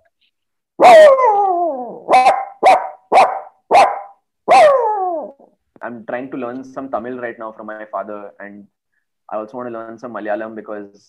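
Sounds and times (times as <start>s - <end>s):
actor imitating a dog barking: 0.8s - 5.5s
speech: 5.9s - 11.0s.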